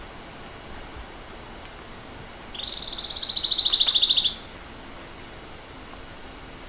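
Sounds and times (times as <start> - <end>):
Pene Sigi bird trilling in Papua New Guinea: 2.6 - 4.5
faint click: 5.9 - 6.1.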